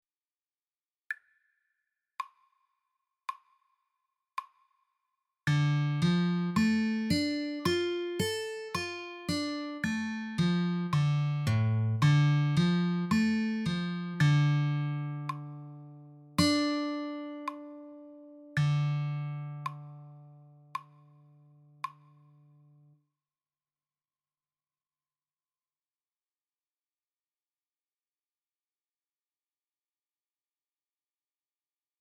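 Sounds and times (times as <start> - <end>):
slow C minor guitar arpeggio: 5.5 - 20.7.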